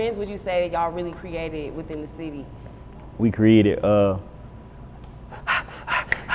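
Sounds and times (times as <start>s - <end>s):
speech: 0.0s - 4.3s
heavy rhythmic breathing as a rap ad-lib: 5.3s - 6.3s.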